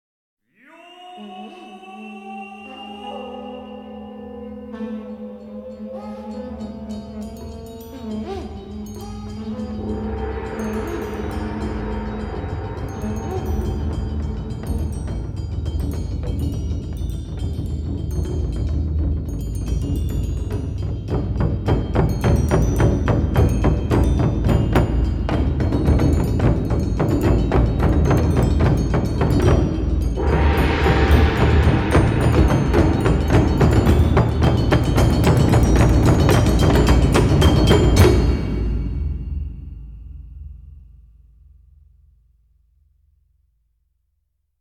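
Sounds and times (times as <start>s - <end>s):
taiko drumming: 7.4s - 39.9s.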